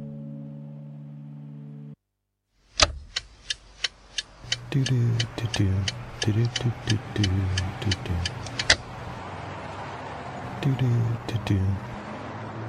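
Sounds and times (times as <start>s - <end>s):
car engine rumbling while driving: 2.7s - 12.6s
faint ticks and clicks: 2.8s - 8.8s
person talking: 4.5s - 8.6s, 10.5s - 11.9s.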